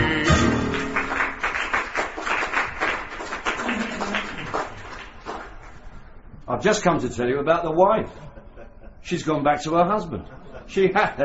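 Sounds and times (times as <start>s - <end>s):
audience clapping in a very old building: 0.0s - 6.0s
speech: 6.6s - 8.3s, 9.1s - 11.2s.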